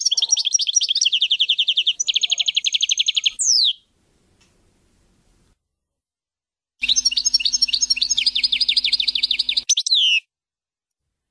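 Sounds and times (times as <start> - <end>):
European goldfinch singing: 0.0 - 3.8, 6.8 - 10.2.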